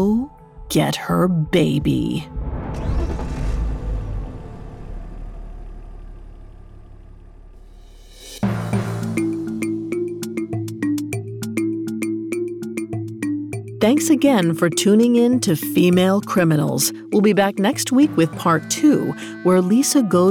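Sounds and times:
speech: 0.0 - 2.5, 13.8 - 20.2
car engine starting: 2.2 - 9.9
rhythmic music: 8.4 - 20.2.

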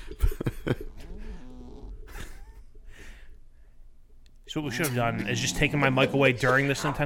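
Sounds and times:
laughter: 0.0 - 1.1, 2.1 - 2.8
cat snoring with wheezy whistling breaths: 1.0 - 2.0
speech: 4.5 - 7.0.

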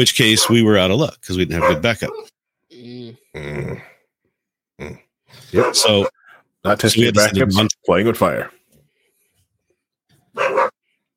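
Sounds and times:
speech: 0.0 - 3.9, 4.8 - 8.6
excited dog barking: 0.3 - 0.7, 1.6 - 2.3, 5.5 - 6.3, 10.3 - 10.8.

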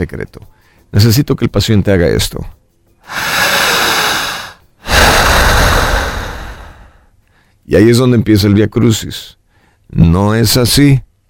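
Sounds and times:
speech: 0.0 - 3.5, 7.7 - 11.1
slow deep forceful breathing: 3.0 - 7.1.

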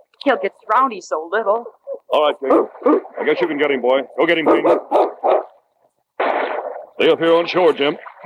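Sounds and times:
speech: 0.2 - 5.1, 7.0 - 8.2
dog barking: 1.8 - 3.6, 4.3 - 5.6.

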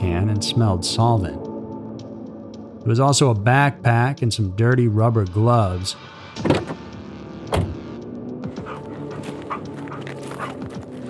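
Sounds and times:
speech: 0.4 - 1.4, 2.8 - 6.8
police dog barking: 8.6 - 10.6.

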